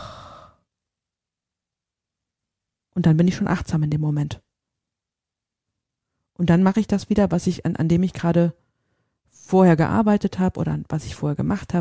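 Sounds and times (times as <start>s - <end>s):
deep breath in and out released as long breathy sigh: 0.0s - 0.6s
speech: 3.0s - 4.5s, 6.4s - 8.6s, 9.3s - 11.7s.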